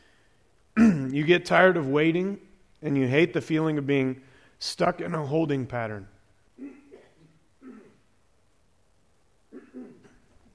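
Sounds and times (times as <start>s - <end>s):
person coughing harshly: 0.8s - 1.2s, 6.6s - 8.1s, 9.5s - 10.4s
speech: 1.1s - 6.8s.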